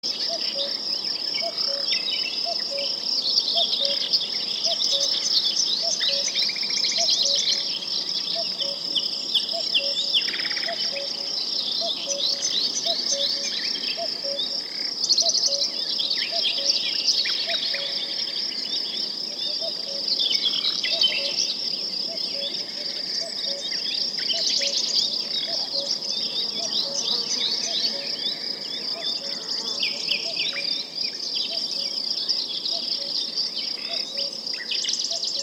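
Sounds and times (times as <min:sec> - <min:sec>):
forest nature sounds in 3D: 0:00.0 - 0:35.4.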